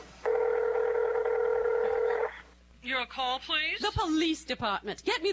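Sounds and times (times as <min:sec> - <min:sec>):
telephone dial tone: 0:00.2 - 0:02.3
speech: 0:03.0 - 0:05.3.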